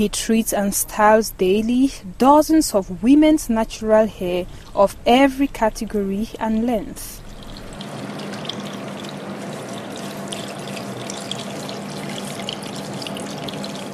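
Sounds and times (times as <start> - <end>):
speech: 0.0 - 7.2
water pouring during a hair wash at a natural-hair salon in Douala Cameroon: 7.2 - 13.9.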